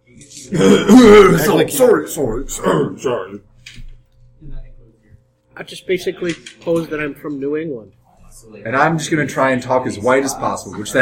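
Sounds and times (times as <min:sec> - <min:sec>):
speech: 0:00.4 - 0:03.5, 0:05.6 - 0:11.0
throat clearing: 0:00.5 - 0:01.4
rough gravelly coughing: 0:00.5 - 0:01.6.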